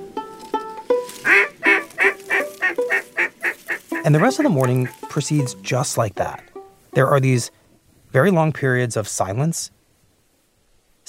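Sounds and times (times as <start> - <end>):
ducks quacking while flying overhead in the morning: 1.2 - 7.1
speech: 4.0 - 9.8.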